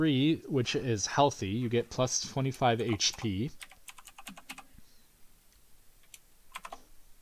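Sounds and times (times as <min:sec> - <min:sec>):
speech: 0:00.0 - 0:03.7
typing on a mechanical keyboard: 0:02.9 - 0:04.6, 0:06.0 - 0:06.8.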